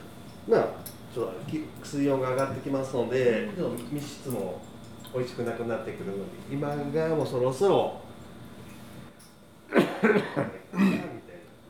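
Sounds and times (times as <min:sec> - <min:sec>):
speech: 0:00.5 - 0:08.0, 0:10.0 - 0:10.9
person coughing from a lingering pollen-blamed cough: 0:09.7 - 0:11.2.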